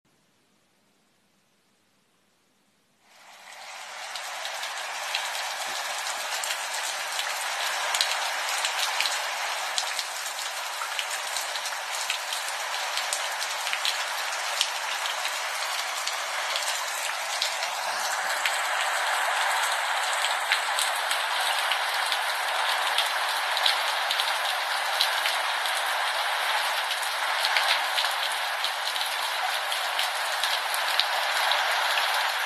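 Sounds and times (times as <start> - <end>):
rainstorm: 3.0 - 32.4.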